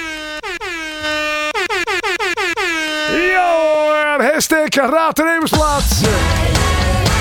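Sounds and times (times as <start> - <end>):
air horn blasts: 0.0 - 3.7
speech: 4.3 - 6.6.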